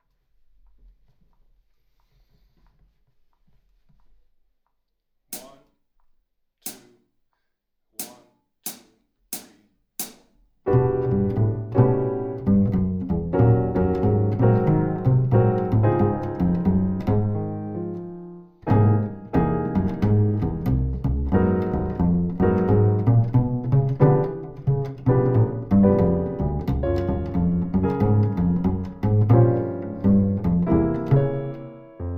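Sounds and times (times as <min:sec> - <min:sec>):
piano: 0:10.7 - 0:32.1
slow tempo bass: 0:10.7 - 0:32.1.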